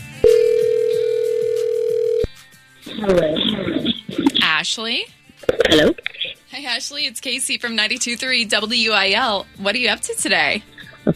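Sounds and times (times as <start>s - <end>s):
phone line ringback tone: 0.2s - 2.3s
speech: 3.0s - 3.5s, 4.6s - 11.1s.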